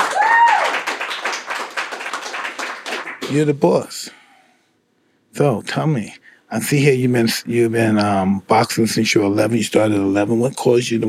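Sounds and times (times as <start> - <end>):
several hands clapping: 0.0 - 3.6
speech: 3.3 - 4.0, 5.4 - 11.0.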